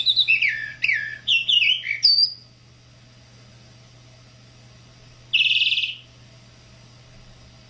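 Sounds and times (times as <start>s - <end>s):
tropical mockingbird singing: 0.0s - 2.5s, 5.3s - 6.1s.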